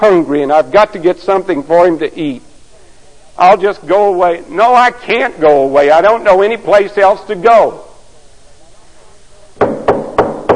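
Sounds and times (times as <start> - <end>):
speech: 0.0 - 2.5, 3.4 - 7.9
firm knocks on a wooden door: 9.6 - 10.5.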